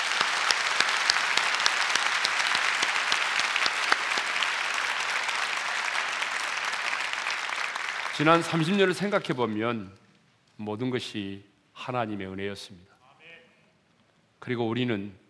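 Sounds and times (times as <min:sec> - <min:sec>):
large church audience applauding: 0:00.0 - 0:09.8
speech: 0:08.2 - 0:10.0, 0:10.6 - 0:12.9, 0:14.4 - 0:15.2.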